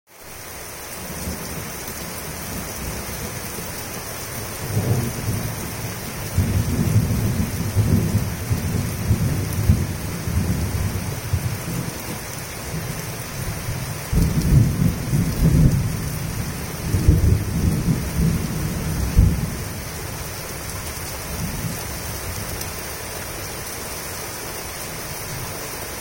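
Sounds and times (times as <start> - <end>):
rain: 0.1 - 25.9
thunder: 6.3 - 11.5, 14.1 - 19.6.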